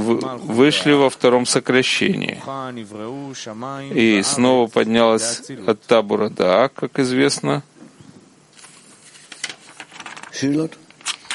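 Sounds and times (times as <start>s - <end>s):
speech: 0.1s - 7.7s, 10.4s - 10.8s
paper page turning: 8.5s - 11.3s.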